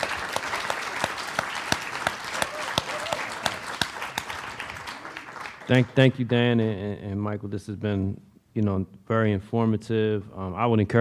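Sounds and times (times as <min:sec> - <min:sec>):
audience applauding: 0:00.0 - 0:06.2
speech: 0:05.7 - 0:10.9.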